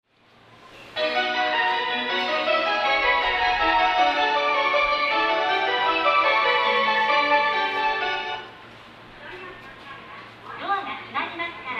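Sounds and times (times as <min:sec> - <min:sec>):
train station departure melody: 0:01.0 - 0:08.6.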